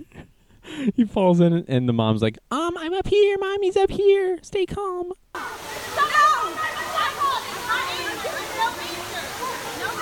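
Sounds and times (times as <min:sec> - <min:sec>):
speech: 0:00.8 - 0:06.6
excited overlapping voices and shouts of people: 0:05.4 - 0:09.9
waterfall roaring at a zoo gorilla enclosure: 0:05.4 - 0:09.9.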